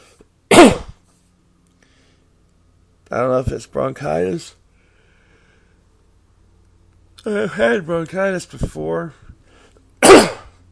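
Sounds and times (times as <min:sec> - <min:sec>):
person coughing harshly: 0:00.5 - 0:01.0, 0:10.0 - 0:10.6
speech: 0:03.1 - 0:04.6, 0:07.2 - 0:09.3.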